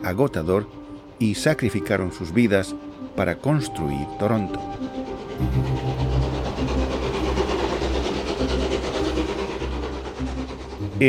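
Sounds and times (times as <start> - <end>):
speech: 0.0 - 5.8
train travelling on rails: 0.0 - 11.0.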